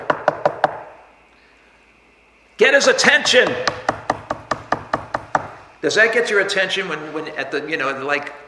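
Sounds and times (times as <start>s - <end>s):
knocking: 0.0s - 0.9s, 3.2s - 5.6s
speech: 2.6s - 3.8s, 5.8s - 8.4s.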